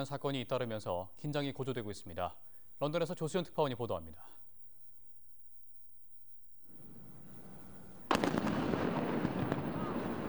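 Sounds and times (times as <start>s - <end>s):
speech: 0.0s - 4.5s
crackling pops: 6.7s - 10.2s
large explosion of a naval drone: 6.8s - 10.2s.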